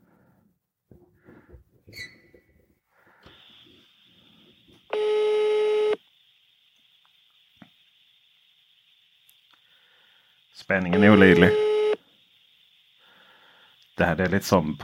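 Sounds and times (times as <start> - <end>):
faint high whine: 3.3 - 14.8
mobile phone call ringing tone: 4.9 - 6.0, 10.9 - 12.0
speech: 10.6 - 11.7, 14.0 - 14.8.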